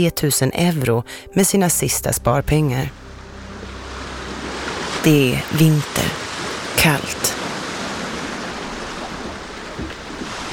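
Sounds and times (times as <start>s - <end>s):
speech: 0.0s - 3.0s, 5.0s - 6.2s, 6.8s - 7.4s
low churning: 1.3s - 10.5s
sea waves surging: 2.5s - 10.5s.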